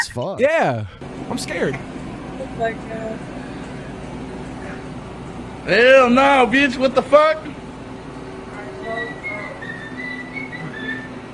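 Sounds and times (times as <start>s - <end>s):
speech: 0.2s - 2.0s, 2.6s - 3.4s, 5.6s - 7.6s
woman whistling through a gap in her teeth: 8.8s - 11.3s.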